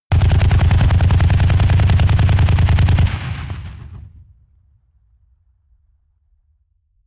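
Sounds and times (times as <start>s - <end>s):
AK-47 rifle firing automatic outdoors: 0.1s - 4.3s.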